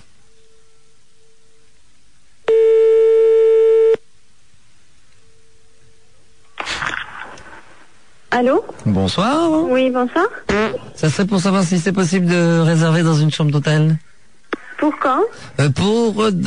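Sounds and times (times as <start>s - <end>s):
telephone ringback tone from a call to a small hotel: 2.5s - 4.0s
short burst of noise: 6.5s - 7.9s
speech: 8.4s - 14.1s, 14.9s - 16.4s.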